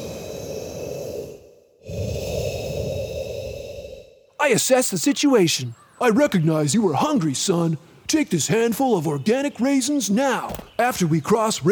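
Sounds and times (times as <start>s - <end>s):
deep airy breath drawn to ease frustration: 0.0s - 4.4s
speech: 4.4s - 11.7s.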